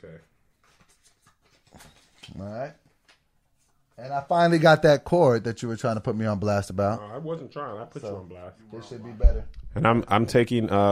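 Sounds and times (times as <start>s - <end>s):
speech: 0.0s - 0.4s, 1.8s - 2.8s, 4.0s - 10.8s
paper word cards being shuffled and handed over: 0.6s - 3.2s.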